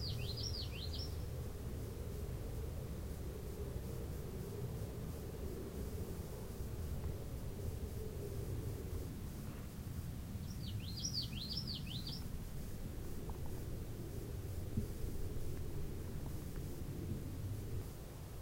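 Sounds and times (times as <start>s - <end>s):
common yellowthroat song: 0.0s - 1.3s, 10.4s - 12.3s
low steady noise: 0.0s - 18.3s.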